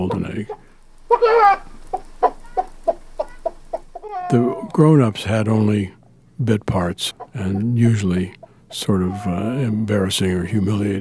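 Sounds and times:
speech: 0.0s - 0.6s, 1.2s - 1.7s, 4.3s - 10.9s
man imitating chicken clucking: 0.0s - 1.6s, 2.6s - 4.7s, 7.1s - 9.9s.

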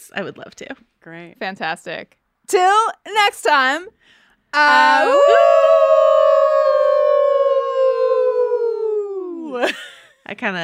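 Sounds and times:
speech: 0.1s - 6.1s, 9.5s - 10.6s
people howling like wolves: 4.6s - 9.6s.

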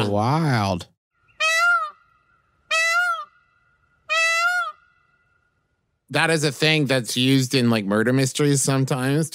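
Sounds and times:
speech: 0.0s - 0.9s, 6.1s - 9.3s
peacock calls: 1.2s - 5.7s.

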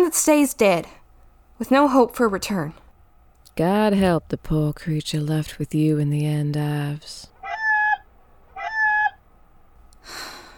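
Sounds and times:
speech: 0.1s - 1.0s, 1.6s - 2.8s, 3.6s - 7.3s
chicken squawking and clucking: 8.6s - 9.2s.

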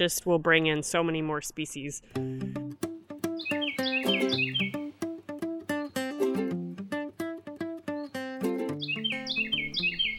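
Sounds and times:
speech: 0.0s - 2.6s
Carolina wren singing: 3.3s - 6.4s, 7.6s - 10.1s.

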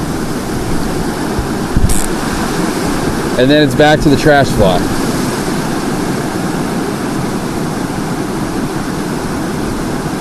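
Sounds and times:
heavy rain pouring: 0.0s - 10.2s
speech: 3.4s - 5.0s.

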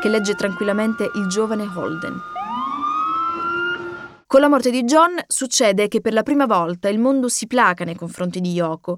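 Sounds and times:
speech: 0.0s - 2.4s, 4.3s - 8.9s
police car siren wailing: 0.0s - 4.3s.

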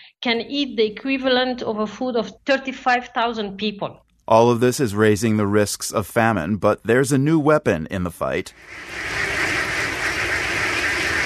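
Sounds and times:
speech: 0.2s - 9.3s
large flock of ducks quacking: 8.7s - 11.2s.

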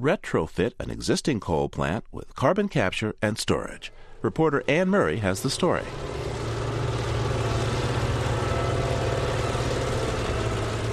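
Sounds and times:
speech: 0.0s - 6.2s
heavy truck engines idling while hauling coal at a power plant: 3.9s - 10.9s.

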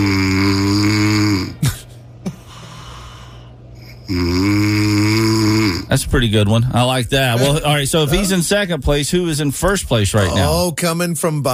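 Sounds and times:
man snoring loudly with deep rattling snores: 0.0s - 6.0s
speech: 6.0s - 11.5s.

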